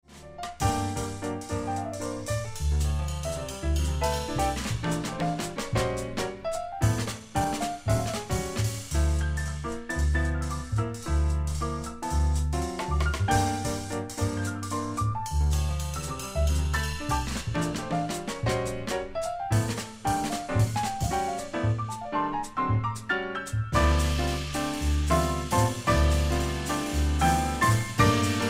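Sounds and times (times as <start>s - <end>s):
Romanian jazz in a minor blues: 0.1s - 28.4s.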